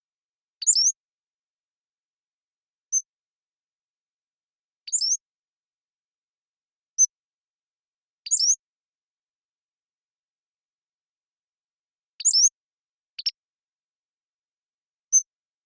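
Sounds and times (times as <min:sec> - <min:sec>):
Pacific-slope flycatcher singing high slurred squeaky phrases: 0:00.6 - 0:01.0, 0:04.9 - 0:05.2, 0:08.3 - 0:08.6, 0:12.2 - 0:12.6.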